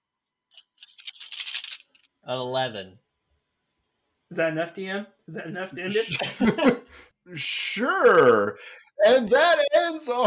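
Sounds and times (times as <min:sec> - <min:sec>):
dice clattering and tumbling across a hard table: 0:00.8 - 0:02.0
speech: 0:02.3 - 0:03.1, 0:04.3 - 0:10.2
laughter: 0:05.8 - 0:07.0, 0:09.1 - 0:10.2.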